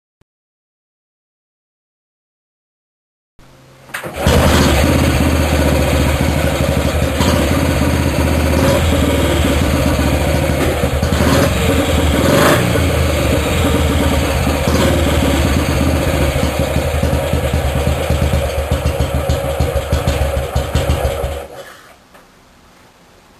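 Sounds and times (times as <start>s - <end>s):
1964 Matchless G2 CSR motorcycle engine: 3.9s - 21.9s.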